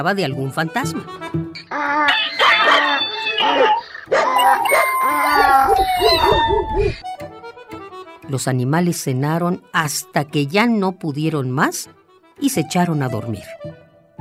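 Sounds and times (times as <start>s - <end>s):
speech: 0.0s - 7.3s, 8.3s - 13.8s
donkey braying: 1.5s - 7.0s
cat meowing: 1.7s - 7.0s
dog barking: 2.1s - 6.6s
rooster crowing: 2.1s - 6.9s.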